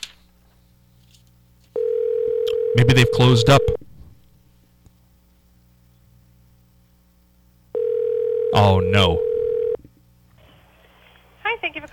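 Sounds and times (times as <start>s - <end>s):
telephone line click: 1.8s - 2.7s
telephone dial tone while dialing a call: 1.8s - 3.7s, 7.8s - 8.6s, 9.2s - 9.8s
speech: 2.8s - 3.8s.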